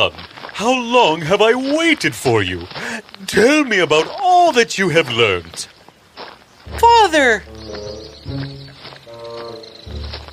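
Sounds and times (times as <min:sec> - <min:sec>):
speech: 0:00.0 - 0:05.8, 0:06.7 - 0:08.4
harsh drawn-out bird calls: 0:00.6 - 0:10.3
deeper bird squawking bursts: 0:06.7 - 0:10.3.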